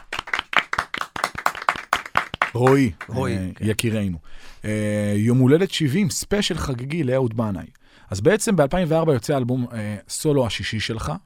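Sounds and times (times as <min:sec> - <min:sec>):
small group clapping hands: 0:00.0 - 0:03.4
speech: 0:02.5 - 0:11.2.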